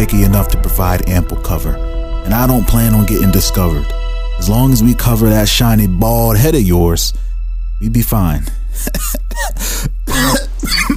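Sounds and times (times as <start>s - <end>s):
speech: 0.0s - 7.2s, 7.8s - 10.4s
woman coughing up fluid: 8.8s - 10.9s.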